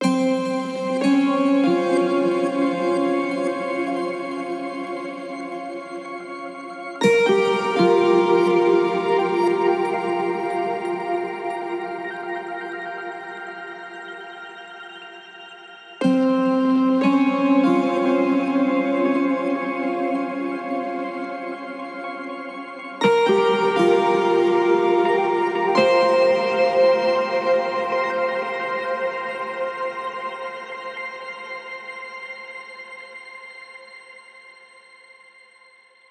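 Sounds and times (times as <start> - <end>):
guitar in A flat major at 60 BPM: 0.0 - 13.1, 16.0 - 31.0.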